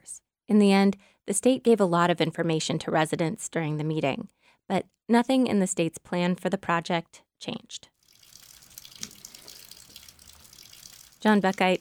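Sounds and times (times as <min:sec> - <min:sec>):
speech: 0:00.5 - 0:07.9, 0:11.2 - 0:11.7
rain dripping from an awning at an airport as a spring storm finishes: 0:08.0 - 0:11.7.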